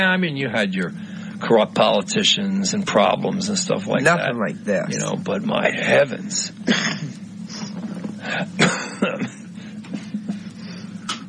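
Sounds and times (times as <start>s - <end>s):
speech: 0.0s - 7.6s, 8.2s - 9.4s
steady low hum: 0.0s - 11.2s
person coughing in short rough bursts: 6.6s - 10.1s.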